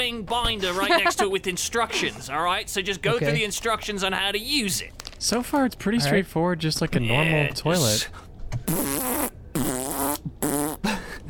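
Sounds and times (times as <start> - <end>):
speech: 0.0 - 9.2
man blowing raspberries with his mouth to imitate farts: 8.7 - 11.0.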